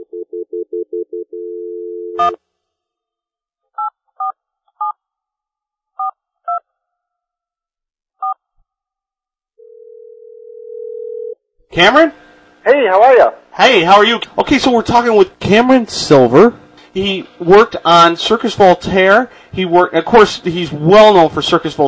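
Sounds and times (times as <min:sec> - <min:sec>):
phone line pulsing tones: 0:00.0 - 0:02.4
steady dial tone: 0:00.0 - 0:02.4, 0:09.6 - 0:11.4
speech: 0:11.8 - 0:21.8.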